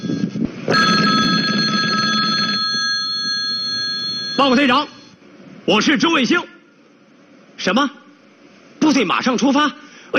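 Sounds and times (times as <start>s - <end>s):
telephone ringing with a steady electronic tone: 0.0s - 5.2s
speech: 4.4s - 5.0s, 5.6s - 6.5s, 7.6s - 8.0s, 8.9s - 10.1s.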